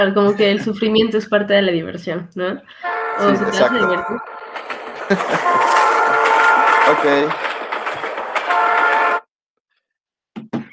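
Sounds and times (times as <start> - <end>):
speech: 0.0 - 7.6
train horn: 2.8 - 4.4, 5.3 - 7.4, 8.4 - 9.3
train rumbling past: 2.8 - 9.2
laughter: 4.9 - 6.1.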